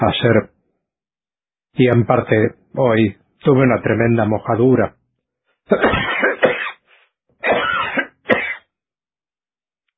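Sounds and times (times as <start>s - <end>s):
speech: 0.0s - 0.6s, 1.8s - 5.0s, 5.7s - 6.3s
person in a harsh raspy coughing fit: 5.7s - 8.7s.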